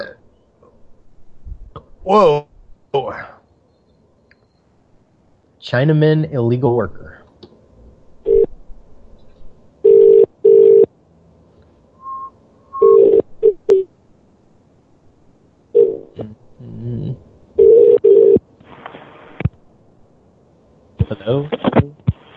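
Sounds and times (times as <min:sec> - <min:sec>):
speech: 0:01.7 - 0:03.3, 0:05.6 - 0:07.2, 0:21.3 - 0:21.9
telephone line short steady tone bursts: 0:09.9 - 0:10.9, 0:12.2 - 0:13.8, 0:17.6 - 0:18.4.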